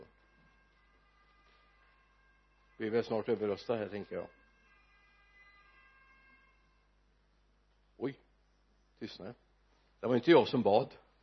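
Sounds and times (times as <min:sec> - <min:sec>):
fire engine siren wailing: 0:00.0 - 0:06.8
speech: 0:02.8 - 0:04.4, 0:09.0 - 0:11.0.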